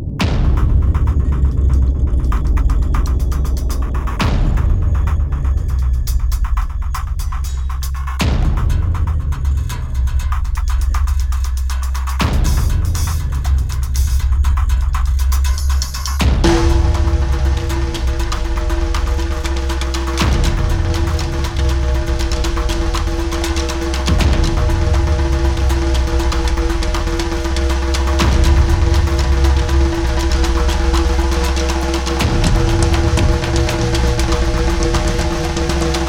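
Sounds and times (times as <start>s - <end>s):
snare drum rolls: 0.2s - 36.0s.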